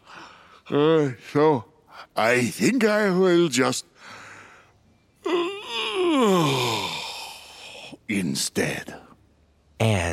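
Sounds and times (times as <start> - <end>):
speech: 0.7 - 4.2, 8.1 - 9.1, 9.8 - 10.1
long drawn-out yawn trailing into a breathy sigh: 5.2 - 8.0.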